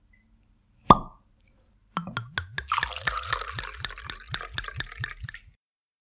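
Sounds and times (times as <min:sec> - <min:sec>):
bottle pop: 0:00.9 - 0:01.2, 0:02.0 - 0:05.6
tawny port wine glugging from a bottle into glasses: 0:02.0 - 0:05.6.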